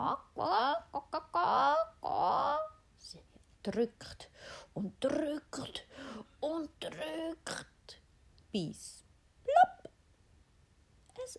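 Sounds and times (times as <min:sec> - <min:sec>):
voice imitating a hen clucking as it settles into the grass: 0:00.0 - 0:02.8
speech: 0:03.6 - 0:06.0, 0:08.5 - 0:09.0.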